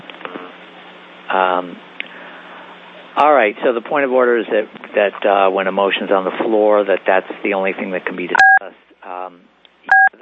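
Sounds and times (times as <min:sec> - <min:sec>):
speech: 0:01.3 - 0:01.9, 0:03.2 - 0:09.5
loud electronic beep on a call line: 0:08.3 - 0:08.6, 0:09.9 - 0:10.1.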